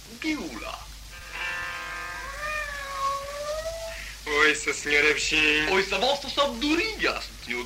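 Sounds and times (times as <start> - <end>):
cats meowing in long wavering cries: 1.2 - 4.3
speech: 4.5 - 7.6.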